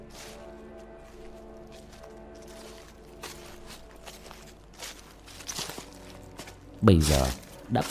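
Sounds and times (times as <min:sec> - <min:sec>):
barefoot child's footsteps splashing through water at night: 0:01.2 - 0:07.8
speech: 0:06.8 - 0:07.8.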